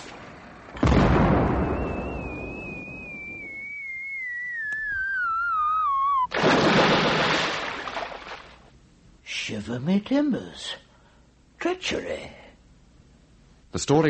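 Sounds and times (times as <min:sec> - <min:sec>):
cannon salute fired as two fleets pass in review: 0:00.2 - 0:03.4, 0:06.3 - 0:07.9
long slowly falling whistle: 0:01.3 - 0:06.3
speech: 0:09.8 - 0:10.8, 0:11.7 - 0:12.4, 0:13.7 - 0:14.0.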